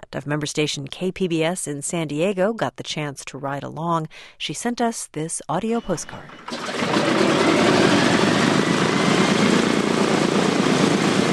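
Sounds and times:
speech: 0.1 - 7.4
B-17 Flying Fortress bomber propeller engines droning: 5.8 - 11.3.

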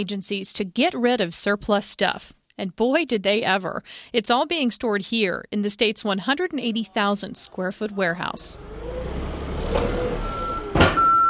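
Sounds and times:
speech: 0.0 - 9.1
forklift reversing beeps while unloading in a large warehouse: 8.7 - 11.2
loud clunk: 9.6 - 11.2.

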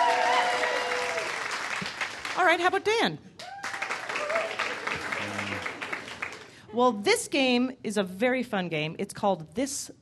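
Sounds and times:
audience applause: 0.0 - 2.4, 3.4 - 6.6
speech: 2.4 - 3.4, 6.7 - 10.0.

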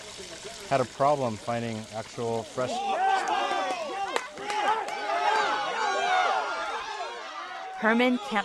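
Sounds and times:
speech: 0.7 - 3.4, 7.8 - 8.4
crowd watching a boxing match shouting and cheering: 2.5 - 8.4.

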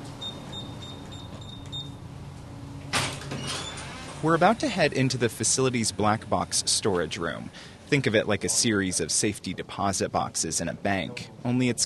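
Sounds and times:
heavy seed vault doors mechanical hum and whine: 0.0 - 8.2
heavy seed vault doors shutting with metallic clunk: 2.9 - 4.2
speech: 4.2 - 11.8.

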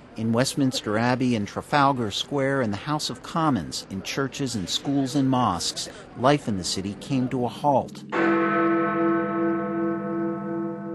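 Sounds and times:
speech: 0.2 - 8.7
large clock tower bell chiming at noon: 8.0 - 10.9.

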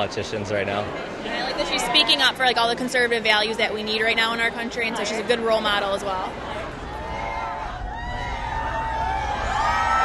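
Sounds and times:
speech: 0.0 - 6.6
crowd of admirers cheering and shouting outside a mall in Michigan: 6.2 - 10.0
people whooping: 6.9 - 10.0.

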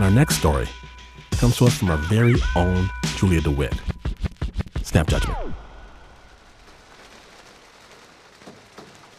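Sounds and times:
speech: 0.1 - 3.9, 4.9 - 5.6
steady rain pattering outside a window: 3.4 - 9.1.

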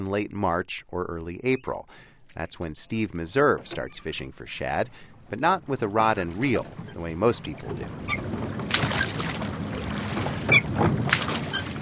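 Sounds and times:
speech: 0.0 - 8.6
soft river water sloshing: 2.2 - 11.8
oars of a rowboat splashing in river water: 2.9 - 4.3, 5.4 - 11.8.

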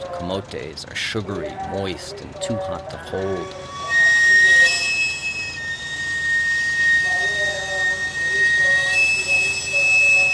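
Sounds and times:
murmur of street noise in Mexico City: 0.0 - 10.3
speech: 0.2 - 3.9
fainter wavering tones: 1.3 - 10.3
steam whistle of stainless steel sweet potato vendor's cart in Mexico City: 3.1 - 10.3.

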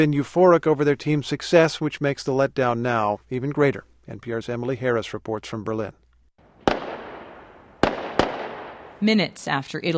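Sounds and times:
speech: 0.0 - 6.0, 9.0 - 9.9
firecrackers bursting over the rooftops of a neighbourhood packed with bars: 6.6 - 9.0.

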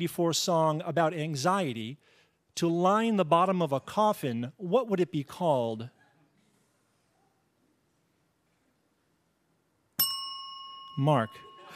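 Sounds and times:
speech: 0.0 - 6.0, 11.0 - 11.7
quiz ring-in bell ding: 10.0 - 11.7.

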